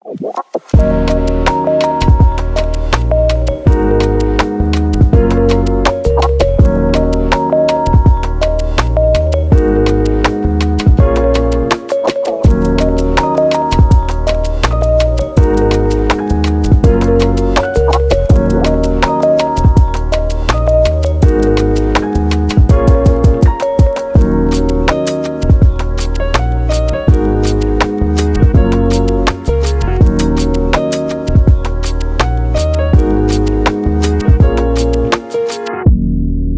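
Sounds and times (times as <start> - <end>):
lofi background music: 0.6 - 36.5.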